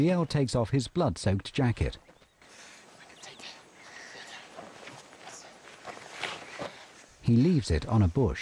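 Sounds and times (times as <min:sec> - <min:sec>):
speech: 0:00.0 - 0:02.1, 0:07.3 - 0:08.3
soft breathy noise: 0:02.4 - 0:04.6, 0:06.3 - 0:07.1
footsteps of two people running through brush and leaves in the woods: 0:04.5 - 0:07.1.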